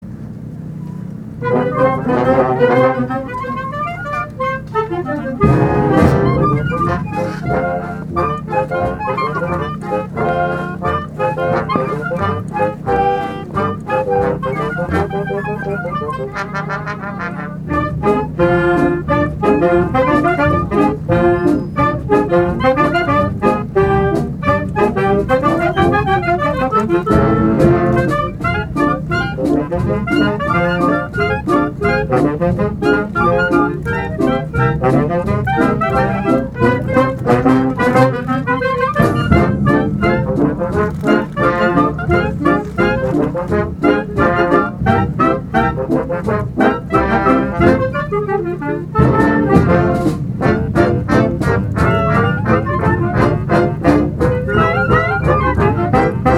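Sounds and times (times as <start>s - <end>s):
jazz pizzicato: 0.0s - 56.3s.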